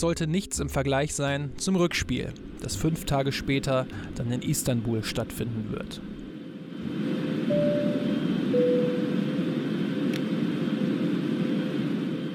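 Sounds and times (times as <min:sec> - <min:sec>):
speech: 0:00.0 - 0:06.2, 0:06.8 - 0:07.7
airplane drone with faint whining tones: 0:03.8 - 0:12.3.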